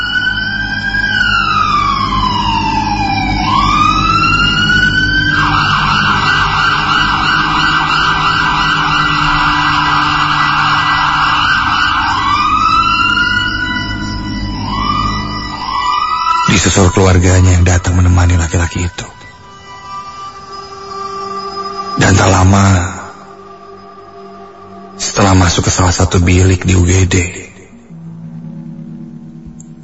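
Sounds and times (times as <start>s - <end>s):
deep engine rumble: 0.0s - 16.0s, 27.2s - 29.8s
ambulance siren wailing: 0.0s - 29.8s
speech: 16.6s - 19.1s, 22.1s - 22.9s, 25.3s - 27.4s.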